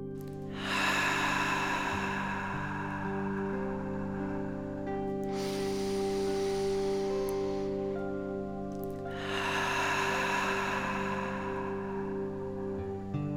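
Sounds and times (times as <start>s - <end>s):
long audible breath during a guided meditation: 0.2s - 13.3s
sustained soft ambient tones with chime-like notes: 0.2s - 13.3s.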